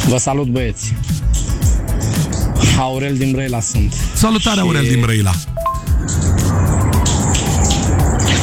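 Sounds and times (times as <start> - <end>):
speech: 0.1 - 1.6, 2.6 - 6.2
shower water running: 6.2 - 8.4.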